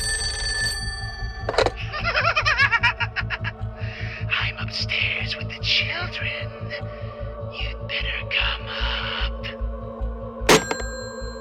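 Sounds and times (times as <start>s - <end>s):
telephone ringing with a warbling electronic trill: 0.0s - 1.8s, 10.5s - 11.3s
low rhythmic pulse: 0.0s - 11.3s
laughter: 1.8s - 4.1s.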